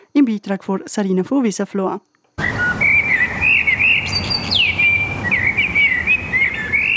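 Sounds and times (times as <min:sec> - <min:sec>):
speech: 0:00.2 - 0:02.1
whinchat or red-backed shrike singing scratchy warbles and high chirps: 0:02.4 - 0:06.9.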